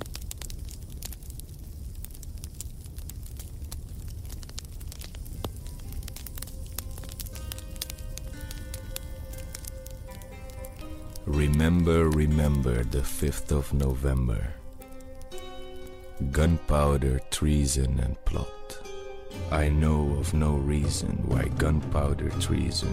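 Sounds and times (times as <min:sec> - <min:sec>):
low roar of bonfire flames: 0:00.0 - 0:16.4
bonfire crackling with pops and snaps: 0:00.0 - 0:22.9
speech: 0:11.5 - 0:14.6, 0:16.2 - 0:18.6, 0:19.5 - 0:22.9.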